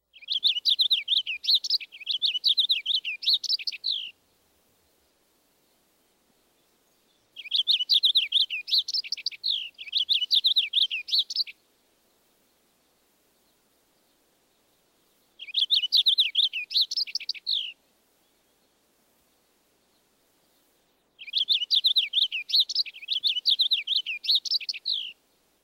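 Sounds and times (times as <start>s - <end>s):
purple finch singing warbling phrases: 0.1s - 4.2s, 7.0s - 11.6s, 15.4s - 17.8s, 21.2s - 25.2s.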